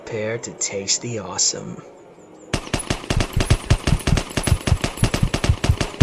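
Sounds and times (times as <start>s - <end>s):
speech: 0.1s - 2.0s
machine gun firing with a fresh large magazine: 2.6s - 6.0s.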